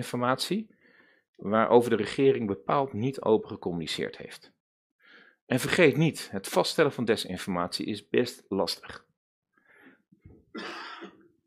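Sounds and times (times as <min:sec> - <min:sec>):
speech: 0:00.0 - 0:00.8, 0:01.4 - 0:04.6, 0:05.5 - 0:09.1, 0:10.6 - 0:11.1
person coughing: 0:10.6 - 0:11.3.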